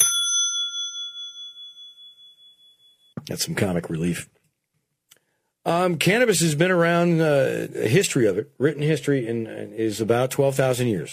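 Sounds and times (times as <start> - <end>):
bell ding: 0.0 - 3.2
speech: 3.2 - 4.4, 5.7 - 11.1.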